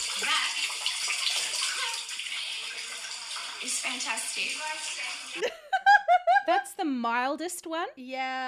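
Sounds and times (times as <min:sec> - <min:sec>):
water trickling through the ceiling: 0:00.0 - 0:05.4
speech: 0:03.6 - 0:08.4
laughter: 0:05.4 - 0:06.7.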